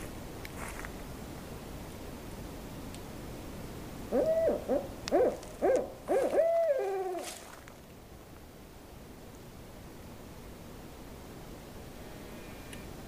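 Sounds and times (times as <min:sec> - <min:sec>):
owl hooting: 0:04.1 - 0:07.6.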